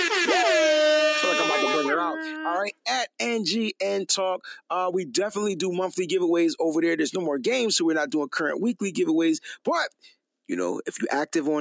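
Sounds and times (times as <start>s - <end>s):
loud air horn blaring: 0.0s - 2.6s
speech: 2.0s - 11.6s.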